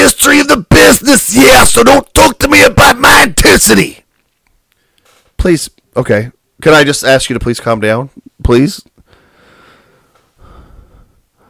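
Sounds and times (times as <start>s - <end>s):
speech: 0.1s - 4.1s, 5.4s - 8.9s
heavy deliberate breathing with a snorting edge: 9.0s - 11.4s.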